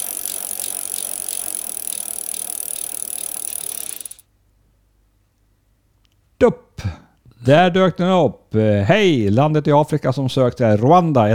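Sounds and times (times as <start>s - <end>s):
tombola wheel spinning with ratcheting clicks: 0.0s - 4.2s
speech: 6.4s - 11.3s.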